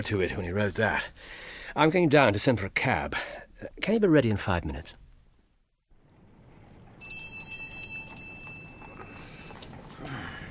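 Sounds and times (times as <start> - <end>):
speech: 0.0 - 5.0
doorbell ringing in a rapid rattling burst: 7.0 - 9.6.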